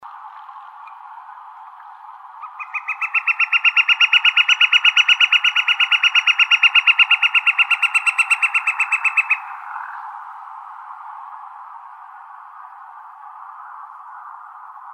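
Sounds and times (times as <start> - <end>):
woodpecker nasal call in Arizona: 2.4 - 10.0.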